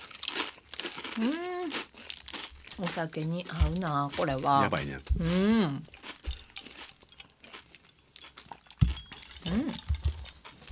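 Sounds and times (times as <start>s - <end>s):
light airy snack made with natural carbonated spring water being bitten and chewed: 0.0s - 5.1s, 5.8s - 10.6s
speech: 1.2s - 1.9s, 2.8s - 5.9s
person humming a drawn-out sound: 5.2s - 5.8s, 9.5s - 9.9s.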